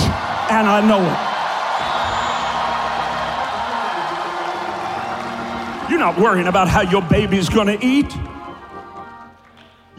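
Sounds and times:
large audience screaming and cheering: 0.0 - 9.5
speech: 0.6 - 1.3, 5.9 - 8.4.

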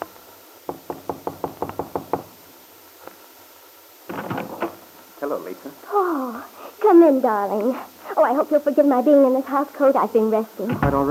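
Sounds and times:
firm knocks on a hotel room door: 0.7 - 2.3
speech: 5.2 - 11.0.

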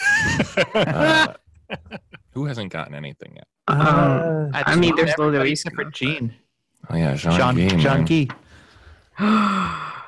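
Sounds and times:
laughter: 0.0 - 2.4, 3.8 - 6.0
speech: 0.4 - 8.4, 9.2 - 9.9
sharp voiced gasp: 8.5 - 10.0.

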